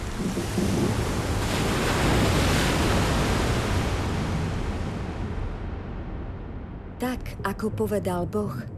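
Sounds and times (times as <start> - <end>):
strong wind roaring: 0.0 - 6.7
speech: 0.2 - 0.8, 7.0 - 8.7.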